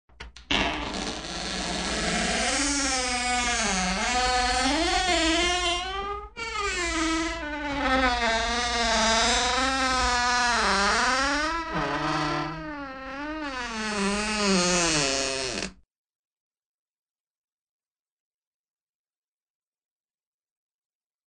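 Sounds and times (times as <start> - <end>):
exaggerated door creaks: 0.1 - 15.8.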